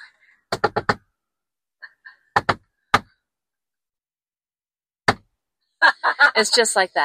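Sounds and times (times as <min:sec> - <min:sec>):
secret code knock on a door: 0:00.5 - 0:01.0, 0:02.4 - 0:03.1, 0:05.1 - 0:05.3
laughter: 0:05.8 - 0:06.9
speech: 0:06.4 - 0:07.0.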